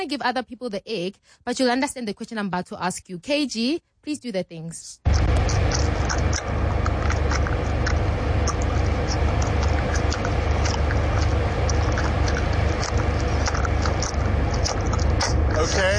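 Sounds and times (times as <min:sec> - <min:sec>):
speech: 0:00.0 - 0:06.5, 0:15.6 - 0:15.9
constant hum of noise: 0:00.0 - 0:15.9
person chewing food loudly: 0:05.1 - 0:15.9.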